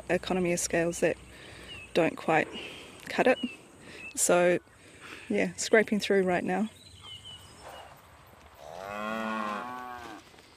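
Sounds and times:
faint outdoor noise: 0:00.0 - 0:10.5
speech: 0:00.1 - 0:01.3, 0:02.0 - 0:03.6, 0:04.2 - 0:04.7, 0:05.3 - 0:06.8
beef cattle mooing on a hillside of a small farm: 0:08.6 - 0:10.2.

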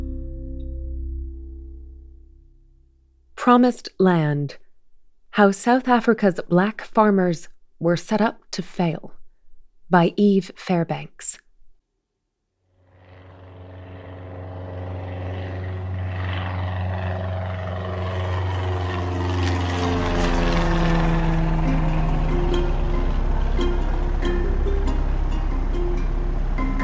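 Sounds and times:
speech: 0:03.4 - 0:04.6, 0:05.4 - 0:09.2, 0:09.9 - 0:11.4
small propeller plane engine droning: 0:12.7 - 0:26.8.

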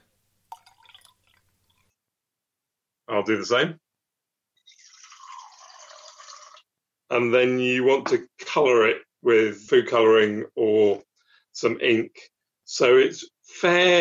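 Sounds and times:
water pouring into a glass jar: 0:00.4 - 0:02.0, 0:04.6 - 0:06.7
speech: 0:03.1 - 0:03.8, 0:07.1 - 0:13.9.

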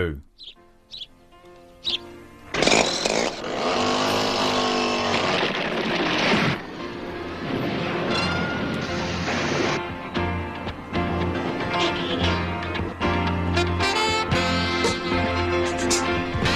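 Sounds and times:
speech: 0:00.0 - 0:01.0
two short pulls of a chainsaw starter: 0:02.5 - 0:06.2
TV drama theme music: 0:05.4 - 0:16.5.

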